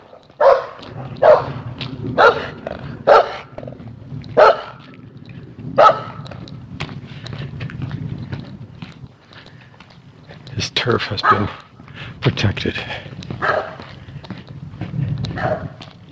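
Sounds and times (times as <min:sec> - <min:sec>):
dog barking: 0:00.1 - 0:01.6, 0:02.2 - 0:03.5, 0:04.3 - 0:04.8, 0:05.8 - 0:06.2, 0:11.2 - 0:11.6, 0:13.4 - 0:13.9, 0:15.3 - 0:15.8
steady low rumble: 0:00.8 - 0:16.0
speech: 0:02.2 - 0:02.5, 0:10.9 - 0:11.6, 0:12.3 - 0:13.5.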